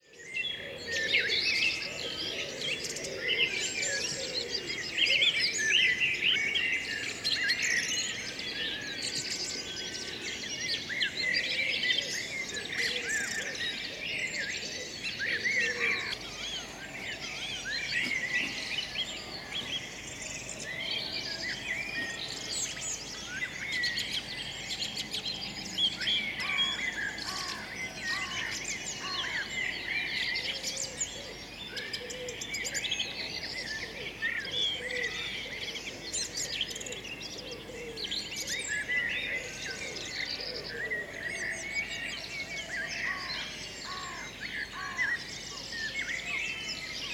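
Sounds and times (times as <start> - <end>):
birds singing: 0.0 - 47.1.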